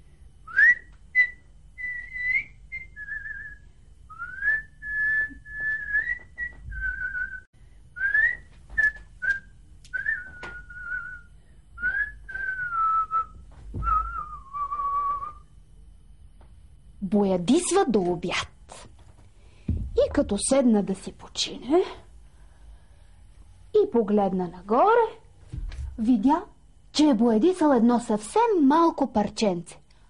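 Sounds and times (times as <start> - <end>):
person whistling a simple melody: 0.5 - 15.4
speech: 17.1 - 18.5, 20.2 - 22.0, 23.9 - 25.2, 26.0 - 29.8.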